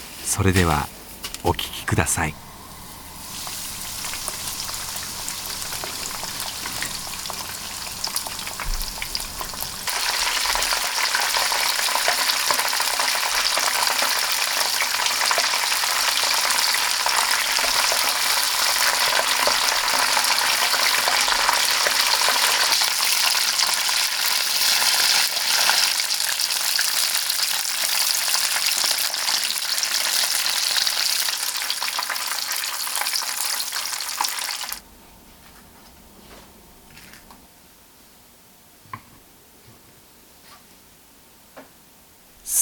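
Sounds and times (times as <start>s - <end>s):
speech: 0.3s - 2.4s
oysters deep-frying in hot oil: 2.7s - 34.8s.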